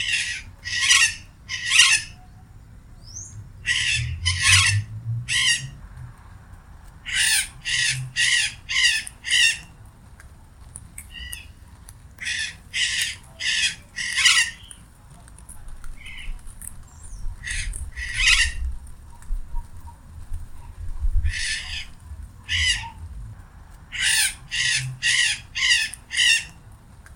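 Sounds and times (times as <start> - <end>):
macaw rasping screeches and squawks: 0.0 - 2.3, 3.1 - 5.8, 7.1 - 9.7, 12.2 - 14.8, 17.4 - 18.7, 21.2 - 23.0, 23.9 - 26.6
steady low background noise: 0.0 - 27.1.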